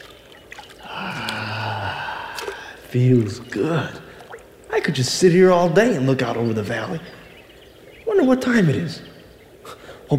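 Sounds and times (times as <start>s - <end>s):
feet sliding into spring water: 0.0s - 4.7s
soft relieved vocal sigh: 0.8s - 2.9s
speech: 2.9s - 4.0s, 4.8s - 7.2s, 8.2s - 9.1s.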